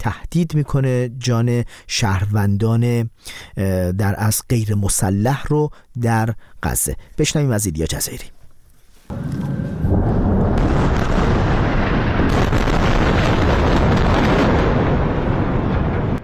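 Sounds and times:
speech: 0.0 - 8.4
heavy bombing explosions and rumbling blasts: 9.1 - 16.2.

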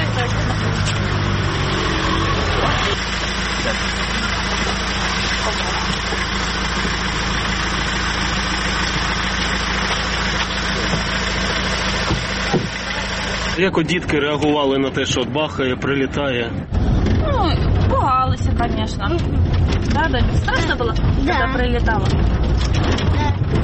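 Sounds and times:
car engine idling and revving: 0.0 - 23.6
speech: 13.6 - 16.8, 18.4 - 23.6.

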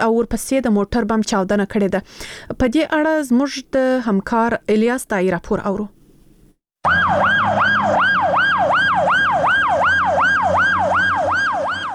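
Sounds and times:
speech: 0.0 - 6.0, 6.8 - 7.8
ambulance siren wailing outside an emergency hospital in Lashkar Gah: 6.8 - 11.9.

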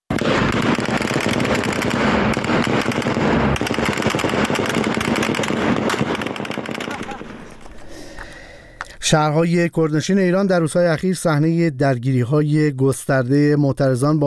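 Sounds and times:
gunfire bursts at protesters: 0.1 - 8.3
outdoor crowd noise: 6.9 - 8.3
speech: 9.1 - 14.2.

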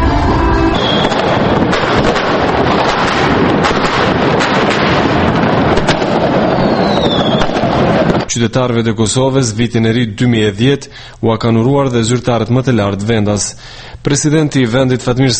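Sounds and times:
heavy wind rumble: 0.0 - 8.3
fireworks crackling and booming at New Year in Pristina Kosovo: 0.0 - 8.4
speech: 8.4 - 15.3.

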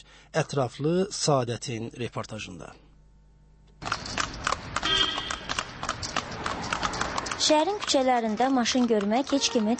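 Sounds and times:
speech: 0.0 - 2.8, 7.5 - 9.7
horse hooves clip-clopping on a city street as a horse-drawn carriage passes: 3.8 - 9.7.

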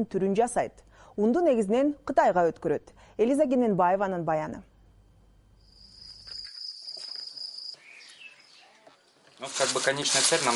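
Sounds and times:
speech: 0.0 - 4.7, 9.4 - 10.5
crickets chirping at a cricket farm: 5.3 - 8.7.

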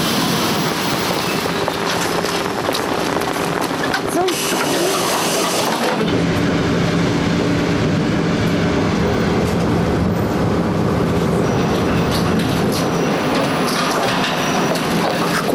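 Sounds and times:
commuter train wheels clattering and faintly squealing: 0.0 - 6.1, 11.3 - 15.5
electric commuter train rumbling along rails: 0.0 - 15.5.

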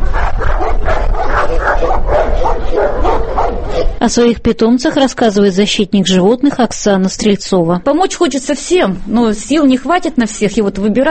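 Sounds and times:
several dogs barking and yipping together: 0.0 - 4.0
speech: 4.0 - 11.0.

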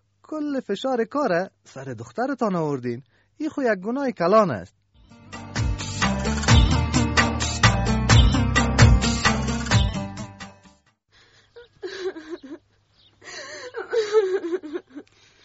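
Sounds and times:
speech: 0.3 - 4.8
loud busy music: 5.2 - 10.8
girl crying and sobbing: 13.3 - 15.1.

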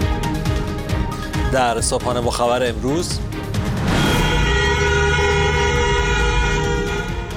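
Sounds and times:
car horns honked in protest during protests in Iran: 0.1 - 2.2, 2.8 - 7.3
speech: 1.5 - 3.9.

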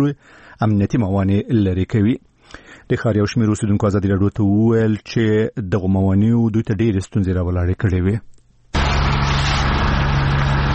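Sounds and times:
speech: 0.0 - 8.3
low hum: 8.7 - 10.7
municipal vehicle engine running in a street in Tarinkot: 8.8 - 10.7.

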